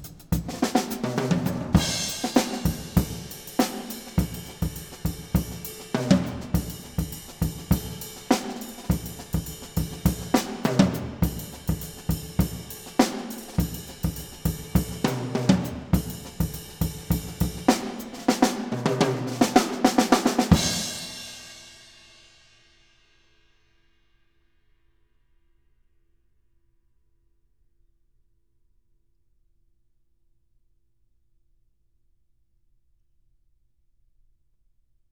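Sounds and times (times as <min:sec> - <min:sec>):
drum hits in a live studio: 0:00.4 - 0:21.2.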